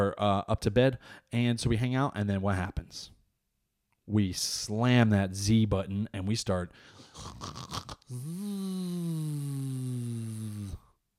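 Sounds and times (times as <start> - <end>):
speech: 0.0 - 3.2, 4.1 - 10.8
person imitating snoring: 7.1 - 10.9.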